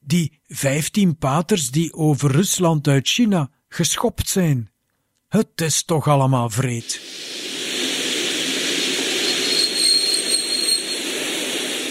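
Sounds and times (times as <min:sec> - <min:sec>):
speech: 0:00.1 - 0:04.7, 0:05.3 - 0:07.4
steam train arriving and rumbling: 0:07.0 - 0:11.9
steam train whistle: 0:08.8 - 0:11.9.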